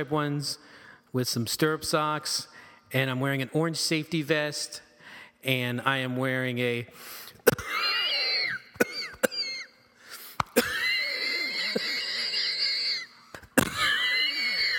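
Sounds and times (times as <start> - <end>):
speech: 0.0 - 7.8
harsh wheezing coughing fit: 7.4 - 9.8, 10.4 - 14.7.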